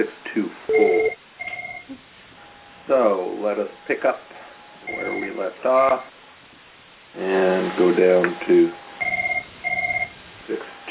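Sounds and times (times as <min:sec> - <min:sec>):
speech: 0:00.0 - 0:00.9, 0:02.9 - 0:04.3, 0:04.9 - 0:06.2, 0:07.1 - 0:08.8
phone ringing with warbling electronic trill: 0:00.7 - 0:02.9, 0:04.8 - 0:06.1, 0:08.7 - 0:10.2.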